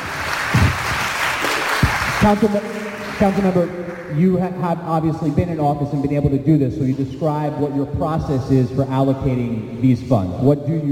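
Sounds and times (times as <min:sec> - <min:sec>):
crowd applauding: 0:00.0 - 0:04.2
speech: 0:02.2 - 0:10.9.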